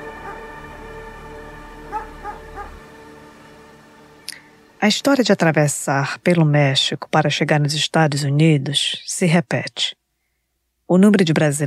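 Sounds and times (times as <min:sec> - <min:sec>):
dogs barking: 0:00.0 - 0:00.7, 0:01.9 - 0:02.8
steady low hum: 0:00.0 - 0:06.9
dog yips and whimpers: 0:01.9 - 0:02.8
speech: 0:04.8 - 0:10.0, 0:10.9 - 0:11.6.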